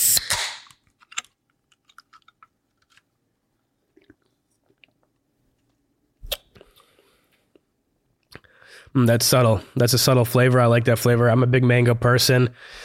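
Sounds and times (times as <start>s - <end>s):
can of flavored sparkling water cracking open with fizzing hiss: 0.0s - 0.8s
speech: 8.9s - 12.8s.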